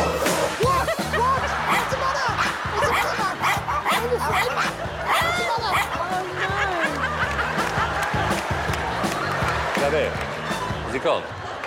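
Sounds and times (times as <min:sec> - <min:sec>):
laughter: 0:00.2 - 0:11.6
dog barking: 0:01.7 - 0:06.0.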